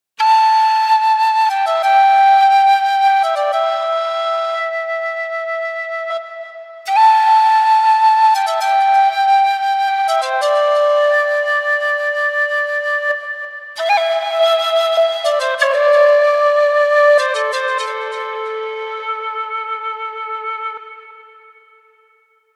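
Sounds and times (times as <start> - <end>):
flutes: 0.2 - 22.5
low D whistle: 0.2 - 22.5.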